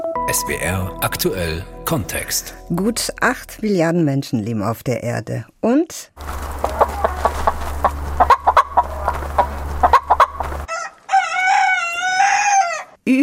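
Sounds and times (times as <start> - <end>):
speech: 0.3 - 6.4
low hum: 6.2 - 10.7
chickens clucking: 6.2 - 12.9
loud rooster crow: 6.5 - 13.0.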